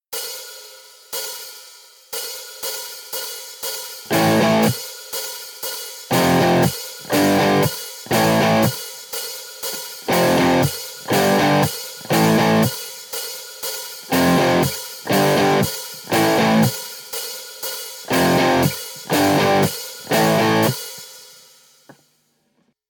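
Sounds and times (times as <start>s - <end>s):
three-note guitar riff: 4.1s - 4.8s, 6.1s - 8.7s, 10.1s - 12.7s, 14.1s - 16.8s, 18.1s - 20.8s.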